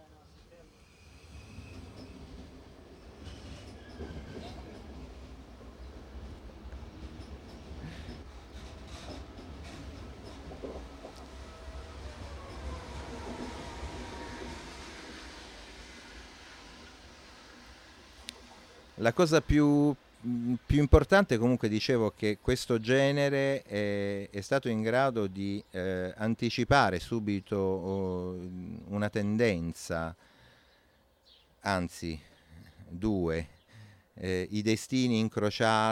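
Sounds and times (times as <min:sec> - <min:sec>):
train rumbling past: 0:00.2 - 0:21.1
metallic squeals of train wheels: 0:03.0 - 0:05.0, 0:07.2 - 0:17.0
speech: 0:19.0 - 0:30.3, 0:31.6 - 0:32.3, 0:32.9 - 0:33.6, 0:34.2 - 0:35.9.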